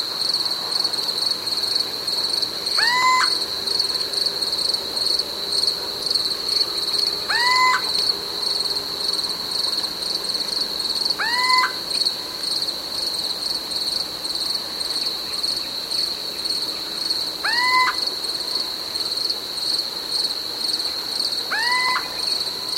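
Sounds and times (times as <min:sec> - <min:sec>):
constant high-pitched insect buzzing: 0:00.0 - 0:22.7
little owl repeating upslurred hoot: 0:02.7 - 0:03.4, 0:07.3 - 0:08.1, 0:11.2 - 0:11.8, 0:17.4 - 0:18.1, 0:21.5 - 0:22.4.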